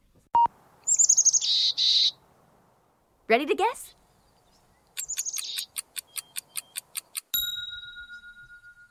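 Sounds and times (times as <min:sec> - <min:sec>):
chickadee calling: 0:00.8 - 0:02.2, 0:04.4 - 0:07.3
speech: 0:03.3 - 0:04.0
sharp click: 0:05.0 - 0:07.4.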